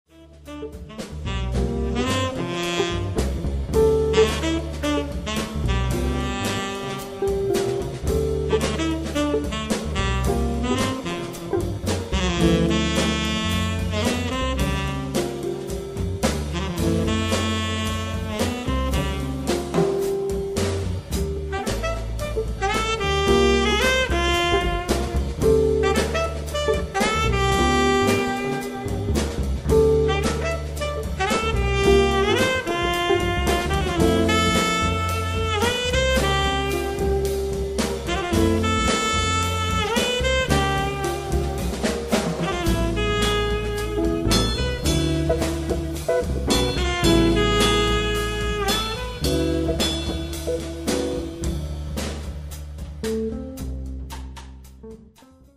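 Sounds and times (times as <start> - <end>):
funk trio with saxophone: 0.1 - 55.2.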